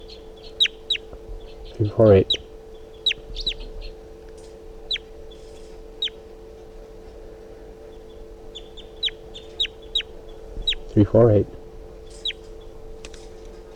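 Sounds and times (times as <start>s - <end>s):
wild bird chittering on a swooping flight over a net: 0.0s - 4.0s, 4.8s - 6.2s, 7.9s - 11.0s, 12.0s - 12.8s
low hum: 0.0s - 13.7s
speech: 1.8s - 2.4s, 11.0s - 11.6s.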